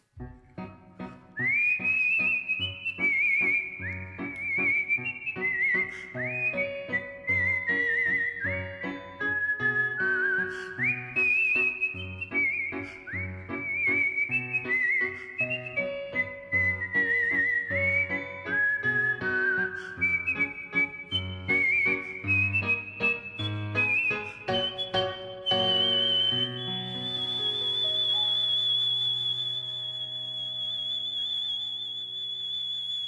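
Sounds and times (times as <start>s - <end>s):
virtuoso art whistling of an operatic melody with trills and vibrato: 1.4s - 33.0s.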